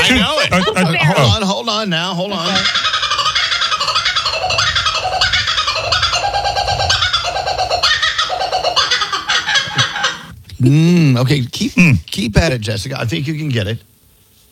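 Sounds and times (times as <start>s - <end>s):
kookaburra laughing call: 0.0s - 10.4s
speech: 0.1s - 3.0s, 10.6s - 13.9s.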